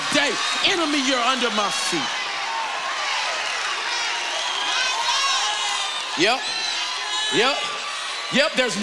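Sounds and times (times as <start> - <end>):
church audience of worshippers shouting and cheering: 0.0 - 8.8
speech: 0.3 - 2.2, 6.2 - 6.6, 7.3 - 7.7, 8.3 - 8.8
individual whoops: 2.6 - 8.1.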